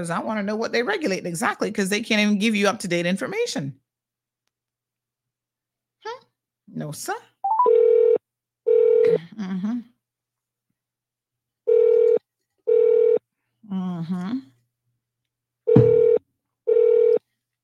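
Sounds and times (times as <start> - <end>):
speech: 0.0 - 3.8, 6.0 - 7.3, 9.0 - 9.9, 13.7 - 14.5
telephone dialing tones placing a call: 11.7 - 13.2, 15.7 - 17.2.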